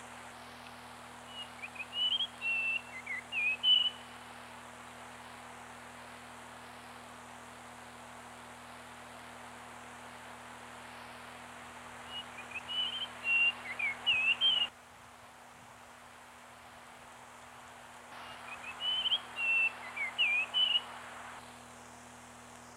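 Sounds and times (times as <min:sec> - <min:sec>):
steady low hum: 0:00.0 - 0:22.7
bird whistling short notes: 0:01.3 - 0:04.0, 0:12.1 - 0:14.7.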